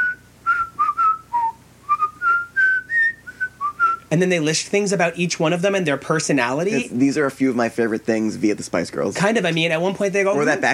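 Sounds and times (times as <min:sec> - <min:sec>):
person whistling a melodic phrase from a song: 0:00.0 - 0:04.1
speech: 0:04.1 - 0:10.7.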